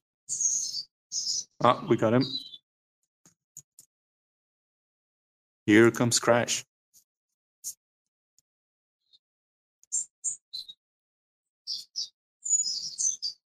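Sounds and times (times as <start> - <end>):
birds chirping outdoors: 0.3 - 2.7, 9.0 - 9.2, 9.8 - 10.8, 11.6 - 13.4
speech: 1.6 - 2.5, 5.7 - 6.7.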